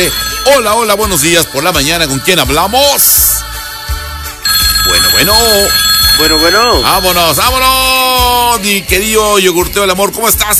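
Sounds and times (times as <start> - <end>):
telephone ringing for an incoming call: 0.0 - 2.2, 4.4 - 8.5
speech: 0.0 - 3.5, 4.8 - 10.5.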